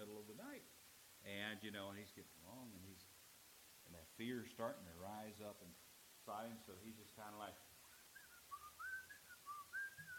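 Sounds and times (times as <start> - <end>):
speech: 0.0 - 3.2, 3.8 - 7.7
person whistling a wavering tune to keep calm: 7.9 - 10.1.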